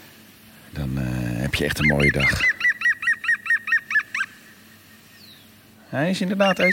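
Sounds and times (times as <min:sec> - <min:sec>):
speech: 0:00.7 - 0:02.6, 0:05.9 - 0:06.7
green woodpecker laughing call: 0:01.5 - 0:05.4, 0:06.3 - 0:06.7.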